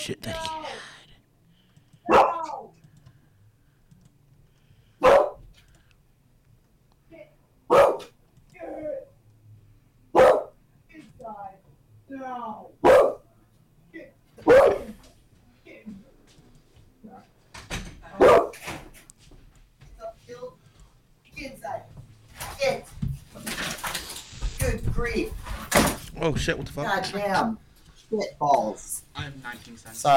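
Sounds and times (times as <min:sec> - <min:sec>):
speech: 0:00.0 - 0:00.9, 0:26.3 - 0:30.1
dog barking: 0:02.0 - 0:02.7, 0:05.0 - 0:05.4, 0:07.7 - 0:08.2, 0:10.2 - 0:10.6, 0:12.8 - 0:13.3, 0:14.4 - 0:15.0, 0:18.2 - 0:18.6
burst of broadband noise: 0:23.5 - 0:25.0.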